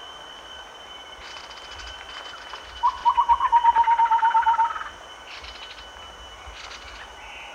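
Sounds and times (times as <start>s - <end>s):
chestnut-winged babbler calling with soft low hooted notes: 2.8s - 4.9s.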